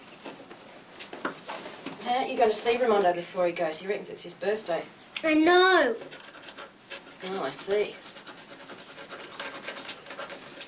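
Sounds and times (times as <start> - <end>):
speech: 2.1 - 6.3, 7.2 - 8.1
eraser rubbing out handwriting: 5.7 - 10.6.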